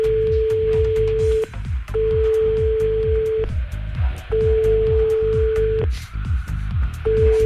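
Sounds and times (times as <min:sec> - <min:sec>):
telephone ringback tone of an unanswered call: 0:00.0 - 0:03.6, 0:04.3 - 0:05.9, 0:07.0 - 0:07.4
low rhythmic music: 0:00.0 - 0:07.4.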